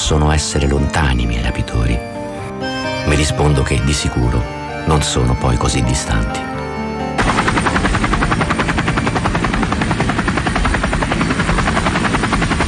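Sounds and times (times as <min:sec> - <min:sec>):
speech: 0:00.1 - 0:02.2, 0:03.0 - 0:06.6
military helicopter rotor thumping: 0:07.2 - 0:12.6.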